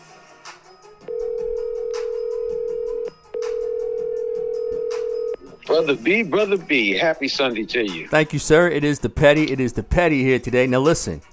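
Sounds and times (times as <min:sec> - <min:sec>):
steady telephone tone as a call is dialed: 0:01.1 - 0:05.5
speech: 0:05.8 - 0:11.3.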